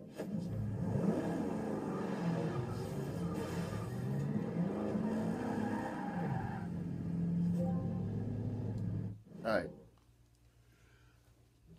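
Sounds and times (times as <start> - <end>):
car engine humming while maneuvering into a parking spot: 0.2 - 9.2
tires squeaking on pavement: 0.9 - 9.2
speech: 9.5 - 9.8.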